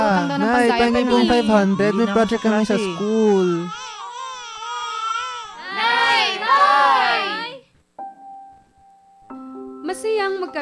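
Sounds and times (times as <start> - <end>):
child crying: 0.0 - 7.6
speech: 0.3 - 3.8, 10.0 - 10.5.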